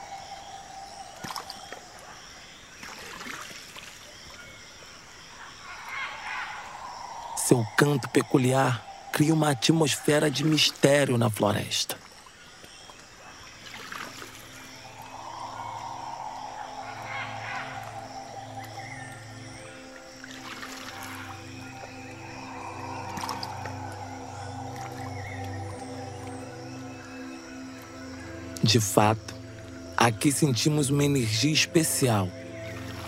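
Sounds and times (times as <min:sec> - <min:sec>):
faint outdoor ambience: 0:00.0 - 0:33.0
canoe paddles swishing through river water during a canoe ride: 0:01.1 - 0:04.5, 0:12.0 - 0:26.5, 0:32.6 - 0:33.0
speech: 0:07.5 - 0:12.0, 0:28.7 - 0:29.3, 0:30.0 - 0:32.4.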